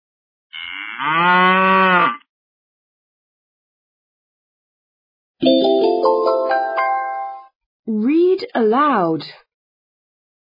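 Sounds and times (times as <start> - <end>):
cow mooing: 0.5 - 2.3
speech: 0.6 - 1.4, 8.6 - 9.4
bright chiming jingle of rising notes: 5.4 - 7.5.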